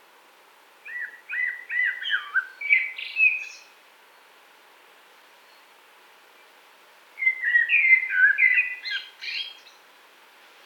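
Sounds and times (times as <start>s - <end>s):
common blackbird song of mellow fluted notes: 0.9s - 3.7s, 7.2s - 9.8s.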